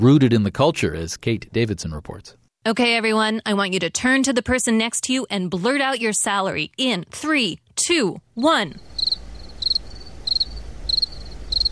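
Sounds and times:
speech: 0.0 - 8.9
crickets chirping: 8.8 - 11.7.

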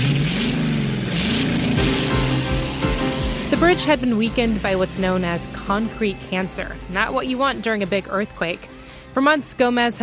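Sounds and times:
car engines revving in a drag race near a steel-arched bridge: 0.0 - 7.9
speech: 3.6 - 10.0.

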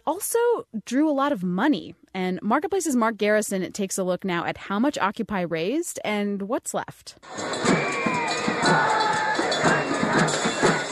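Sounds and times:
speech: 0.1 - 9.0
large Occupy movement protest crowd cheering and shouting outdoors: 7.3 - 10.8.

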